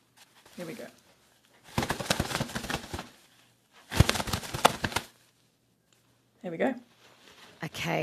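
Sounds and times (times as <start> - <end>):
speech: 0.6 - 1.0, 6.4 - 6.9, 7.6 - 8.0
person imitating the flapping of bird wings: 1.6 - 5.2.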